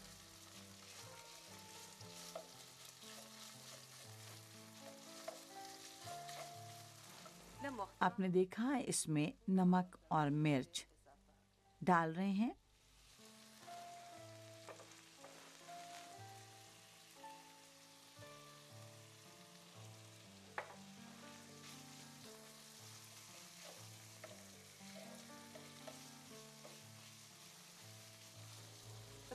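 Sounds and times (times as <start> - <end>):
minced meat sizzling in a hot pan: 0.0 - 8.0, 12.7 - 29.3
spoon scraping and clicking while spreading minced meat: 0.8 - 7.4, 20.6 - 28.8
speech: 7.7 - 10.9, 11.8 - 12.6.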